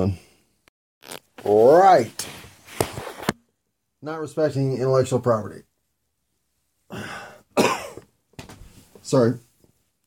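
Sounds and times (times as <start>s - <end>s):
speech: 0.0s - 0.2s, 1.0s - 2.4s, 4.0s - 5.7s, 6.9s - 7.2s, 9.1s - 9.5s
harsh coughs: 7.6s - 8.1s.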